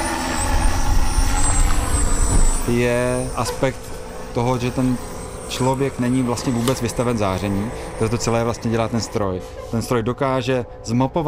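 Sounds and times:
drone rotors humming with a high-pitched buzz over a low mechanical rumble: 0:00.0 - 0:11.2
speech: 0:02.7 - 0:11.2.

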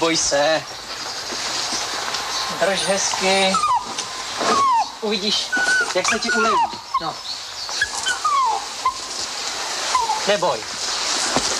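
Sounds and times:
speech: 0:00.0 - 0:01.4, 0:02.5 - 0:03.8, 0:04.4 - 0:07.4, 0:10.3 - 0:10.8
hiss: 0:00.0 - 0:11.5
dog whimpering while being treated for fleas: 0:02.6 - 0:07.2, 0:07.8 - 0:09.1, 0:09.9 - 0:10.3.

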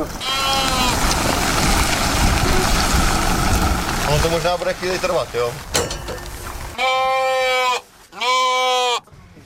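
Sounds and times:
faint noise: 0:00.0 - 0:09.4
sheep bleating in a trailer: 0:00.2 - 0:01.0, 0:06.8 - 0:09.1
speech: 0:04.2 - 0:05.8.

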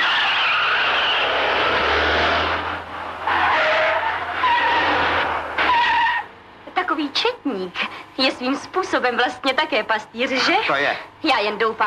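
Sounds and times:
car tires squealing while skidding into a bend: 0:00.0 - 0:06.3
speech: 0:07.6 - 0:11.8.

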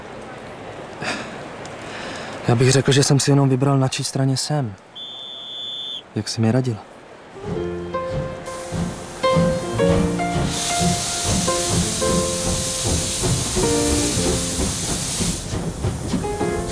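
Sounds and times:
speech: 0:02.5 - 0:04.9, 0:06.1 - 0:07.6
steam train hissing: 0:07.4 - 0:16.7.

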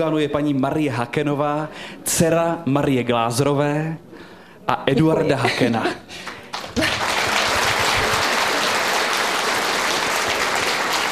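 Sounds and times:
speech: 0:00.0 - 0:06.3
studio audience applause: 0:06.2 - 0:11.1.

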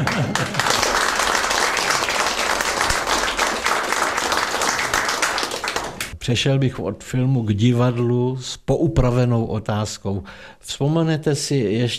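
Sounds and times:
dense audience applause: 0:00.0 - 0:06.1
speech: 0:06.3 - 0:11.9.

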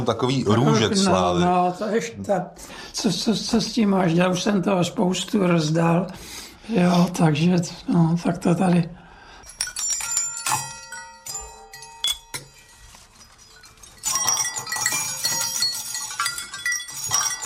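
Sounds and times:
speech: 0:00.0 - 0:09.0
small bell ringing: 0:09.4 - 0:17.4.

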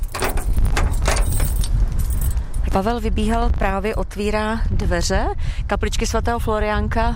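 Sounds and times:
bunch of keys jangling carried to a chapel door on a windy hilltop: 0:00.0 - 0:02.6
low gusty wind rumble on a hilltop: 0:00.0 - 0:07.1
speech: 0:02.8 - 0:07.1.

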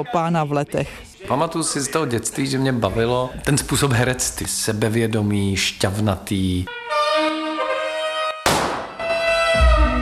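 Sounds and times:
speech: 0:00.0 - 0:06.8
bright brassy tune: 0:06.7 - 0:10.0
pistol shot: 0:08.5 - 0:09.2.

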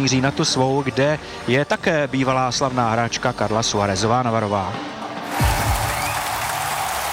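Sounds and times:
speech: 0:00.0 - 0:05.0
tennis crowd applauding: 0:05.0 - 0:07.1.

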